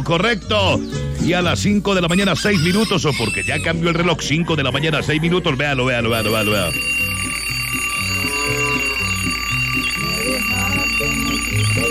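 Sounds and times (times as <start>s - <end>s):
speech: 0.0s - 7.0s
electronic alarm clock tone: 6.1s - 11.8s.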